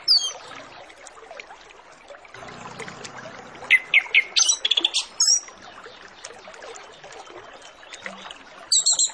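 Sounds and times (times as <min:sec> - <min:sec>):
orange-headed thrush singing: 0:02.4 - 0:05.5
trickling watery hiss: 0:02.4 - 0:06.0.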